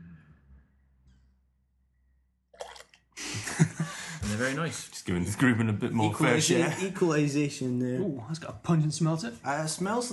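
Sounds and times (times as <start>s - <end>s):
beer, not bottle conditioned, pouring into glasses: 2.6s - 3.2s
laughter: 3.2s - 4.6s
speech: 4.3s - 10.1s.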